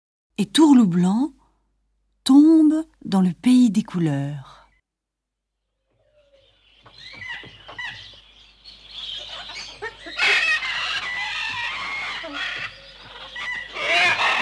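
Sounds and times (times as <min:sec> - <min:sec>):
speech: 0:00.4 - 0:01.4, 0:02.3 - 0:04.6
fowl-like birds clucking, squawking and crowing: 0:06.0 - 0:14.4.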